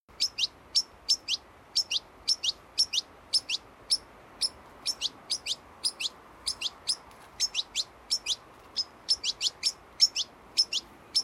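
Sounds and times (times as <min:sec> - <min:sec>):
European goldfinch Carduelis carduelis calling with tinkling chirps: 0:00.2 - 0:11.2.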